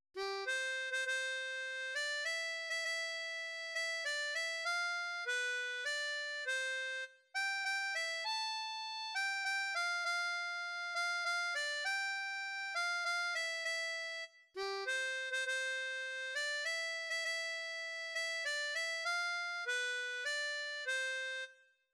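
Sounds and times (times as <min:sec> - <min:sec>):
harmonica in C: 0:00.2 - 0:21.6.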